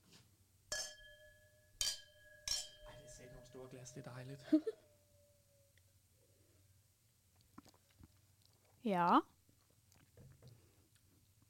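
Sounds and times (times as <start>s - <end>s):
glasses of white wine clinking in a toast: 0.7s - 4.7s
speech: 3.5s - 4.8s, 8.8s - 9.3s
laughter: 4.4s - 4.8s.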